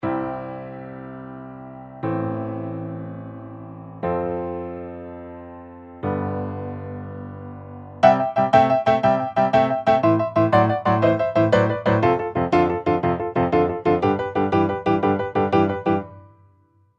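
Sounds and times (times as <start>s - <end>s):
blues piano: 0.0s - 16.4s.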